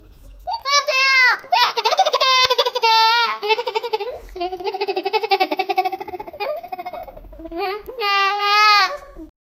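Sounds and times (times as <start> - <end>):
small children giggling: 1.5 - 9.3.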